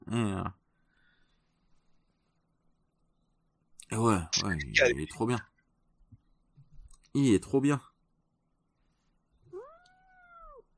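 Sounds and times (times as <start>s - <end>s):
speech: 0.1s - 0.6s, 3.9s - 5.5s, 7.1s - 7.9s
unhappy cat meowing: 9.5s - 10.7s.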